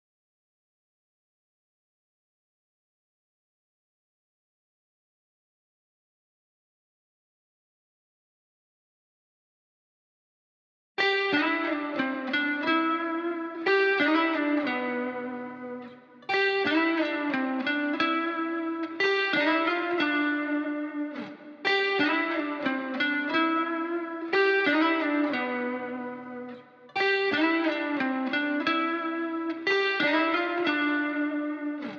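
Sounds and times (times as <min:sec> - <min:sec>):
lead guitar loop in A minor: 0:11.0 - 0:31.9.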